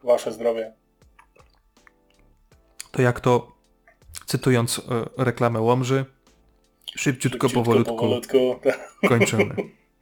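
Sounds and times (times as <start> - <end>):
speech: 0.0 - 0.8, 3.0 - 3.6, 4.2 - 6.2, 7.0 - 9.8
person gulping the last of a beer: 1.1 - 2.0
laughter: 8.7 - 9.7.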